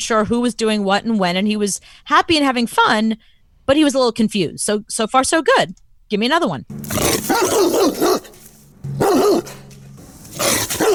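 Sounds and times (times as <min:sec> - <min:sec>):
speech: 0:00.0 - 0:08.3
dog barking and snarling aggressively: 0:06.8 - 0:10.9.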